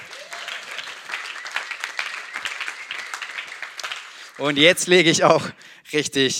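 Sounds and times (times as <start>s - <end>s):
crowd applauding: 0.0s - 5.2s
speech: 4.4s - 6.3s.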